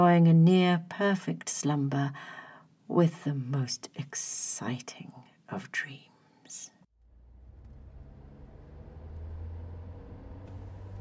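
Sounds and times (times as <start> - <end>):
speech: 0.0 - 6.7
Rolls-Royce car engine humming while driving: 7.0 - 10.9.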